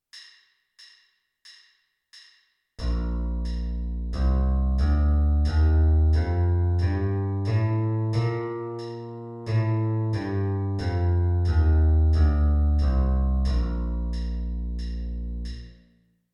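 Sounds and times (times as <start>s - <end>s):
electric bass playing a B flat major scale: 2.8s - 15.8s.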